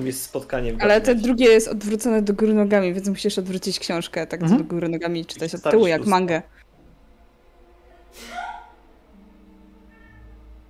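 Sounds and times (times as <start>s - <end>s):
speech: 0.0s - 6.6s, 8.1s - 8.4s
faint low hum: 0.0s - 10.6s
cat meowing: 9.8s - 10.4s.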